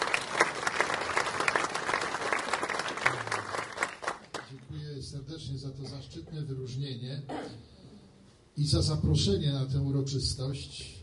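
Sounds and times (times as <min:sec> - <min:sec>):
audience applause at a ceremony: 0:00.0 - 0:04.5
speech: 0:05.3 - 0:07.7, 0:08.6 - 0:11.0.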